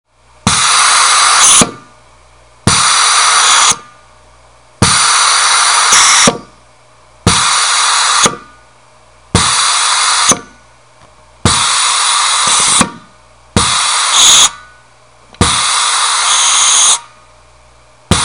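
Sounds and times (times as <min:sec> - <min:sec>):
air escaping: 0:00.5 - 0:01.8, 0:02.7 - 0:03.8, 0:04.8 - 0:06.3, 0:07.3 - 0:08.4, 0:09.4 - 0:10.6, 0:11.5 - 0:13.0, 0:13.6 - 0:14.6, 0:15.4 - 0:17.1.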